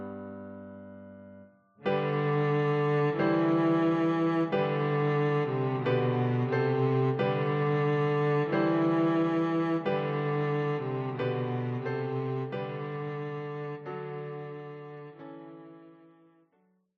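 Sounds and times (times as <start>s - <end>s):
cello playing a Christmas carol: 1.9s - 16.1s.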